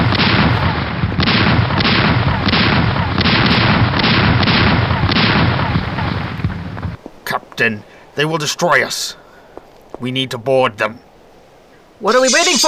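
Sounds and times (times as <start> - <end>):
cannons firing in a sea battle between ships: 0.0 - 7.0
speech: 7.6 - 9.2, 10.0 - 11.1, 12.0 - 12.6.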